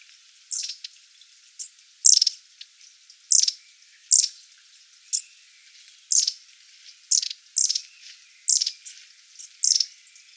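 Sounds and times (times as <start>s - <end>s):
long-tailed tit calls: 0.5s - 0.9s, 3.3s - 4.4s, 6.1s - 6.4s, 7.1s - 10.3s.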